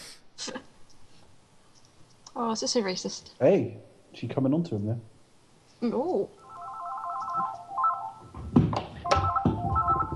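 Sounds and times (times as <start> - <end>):
speech: 2.4 - 5.1, 5.8 - 6.4
telephone ringing with a warbling electronic trill: 6.4 - 8.4, 9.0 - 10.1.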